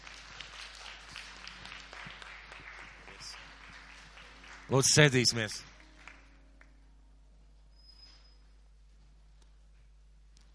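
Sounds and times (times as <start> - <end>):
crowd applauding in a large room: 0.0 - 6.8
speech: 4.7 - 5.7.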